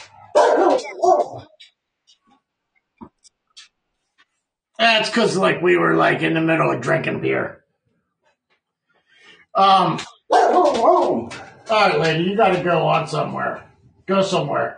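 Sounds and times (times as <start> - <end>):
female dog barking: 0.1 - 1.6, 10.2 - 12.1
speech: 4.8 - 7.6, 9.6 - 14.7.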